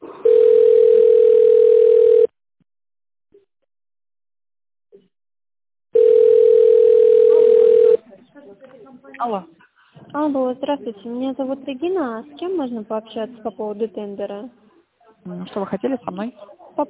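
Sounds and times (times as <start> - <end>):
telephone line tone during call transfer: 0.2 - 2.3, 6.0 - 8.0
speech: 9.3 - 9.5, 10.3 - 14.6, 15.2 - 16.8.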